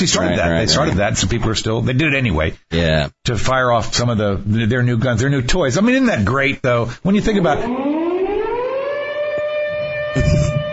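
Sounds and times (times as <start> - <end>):
speech: 0.0 - 7.9
air raid siren wailing: 7.5 - 10.7.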